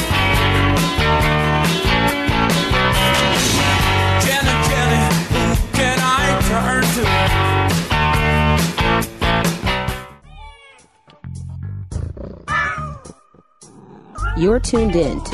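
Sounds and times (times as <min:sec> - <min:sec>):
loud busy music: 0:00.0 - 0:10.0
cat meowing: 0:12.2 - 0:13.2
speech: 0:14.4 - 0:15.3.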